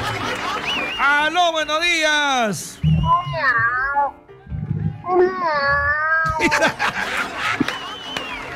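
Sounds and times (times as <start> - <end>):
laughter: 0.0 - 1.0, 6.2 - 8.5
speech: 1.2 - 4.2, 5.1 - 7.6
person imitating cat meows: 3.0 - 4.2, 5.0 - 6.5.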